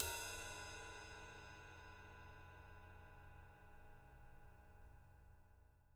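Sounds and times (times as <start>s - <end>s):
ride cymbal drumming on live drums: 0.0s - 3.8s.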